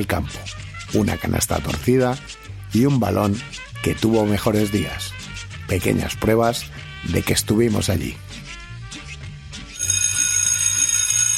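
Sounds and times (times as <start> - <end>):
speech: 0.0 - 8.4
school bell ringing: 9.8 - 11.3.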